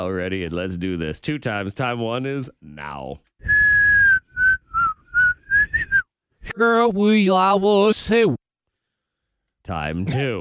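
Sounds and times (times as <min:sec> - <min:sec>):
speech: 0:00.0 - 0:03.6, 0:06.5 - 0:08.4, 0:09.6 - 0:10.4
whistled tune played in reverse: 0:03.4 - 0:06.1.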